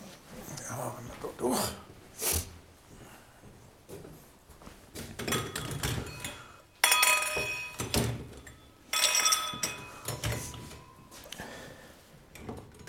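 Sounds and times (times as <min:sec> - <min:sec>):
speech: 0:00.8 - 0:02.3
whisky nosing glasses clinking and tapping: 0:05.2 - 0:11.1.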